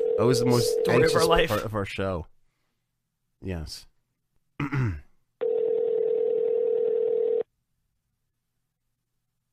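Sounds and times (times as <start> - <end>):
electronic ringback tone of a phone line on an outgoing call: 0.0 - 1.1, 5.4 - 7.4
speech: 0.2 - 2.3, 3.4 - 3.9, 4.6 - 5.0.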